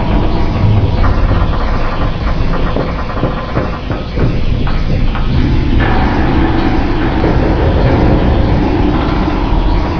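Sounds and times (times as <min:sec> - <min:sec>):
tunnel ambience: 0:00.0 - 0:09.9.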